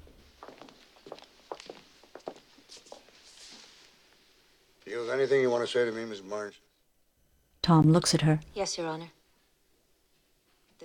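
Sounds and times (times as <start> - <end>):
two people's soft footsteps walking up to a judge's bench in a courtroom: 0.0 - 4.0
speech: 4.9 - 6.6, 7.7 - 9.2.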